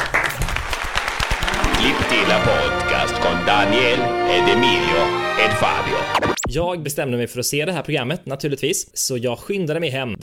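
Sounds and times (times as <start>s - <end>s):
hosts clapping briskly: 0.0s - 3.5s
speech: 2.1s - 10.2s.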